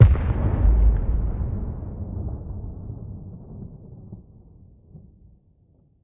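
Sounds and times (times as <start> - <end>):
dragon death explosion: 0.0 - 2.2.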